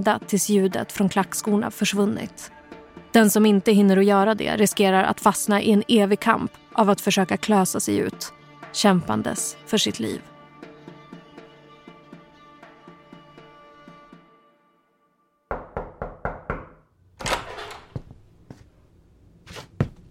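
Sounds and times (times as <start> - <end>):
speech: 0.0 - 10.3
sharp knocks on a bedroom door: 15.5 - 16.9.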